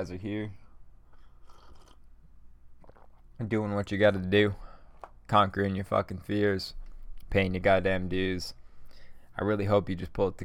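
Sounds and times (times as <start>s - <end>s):
speech: 0.0s - 0.6s, 3.4s - 4.6s, 5.3s - 8.6s, 9.4s - 10.4s
slurping sip of coffee: 1.1s - 2.2s, 2.8s - 3.2s.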